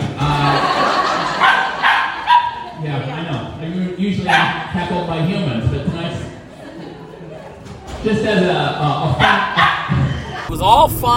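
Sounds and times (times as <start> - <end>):
laughter: 0.0 - 2.8, 5.8 - 7.9, 9.8 - 11.1
murmur of indistinct voices: 0.0 - 11.1
dogs barking at a doggy daycare: 1.2 - 2.8, 4.2 - 4.7, 9.2 - 10.0
speech: 8.1 - 9.6, 10.6 - 11.1.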